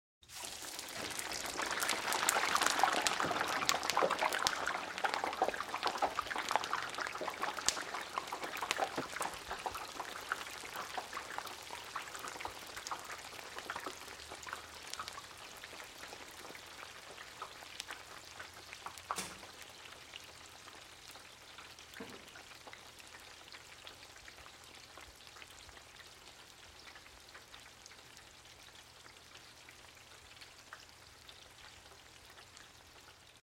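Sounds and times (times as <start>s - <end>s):
grease sizzling: 0.2s - 33.4s
French fries dropped into hot grease: 0.3s - 11.3s, 18.8s - 19.8s.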